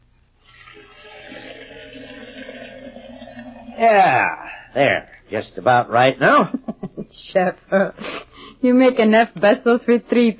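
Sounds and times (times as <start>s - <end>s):
water filling a tea kettle: 0.4s - 4.1s
speech: 3.8s - 10.3s.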